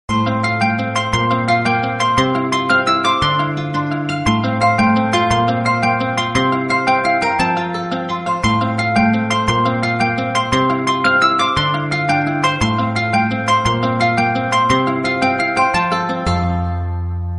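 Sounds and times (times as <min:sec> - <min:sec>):
Samsung Note 9 and LG Optimus G Pro phone ringtone: 0:00.1 - 0:16.8.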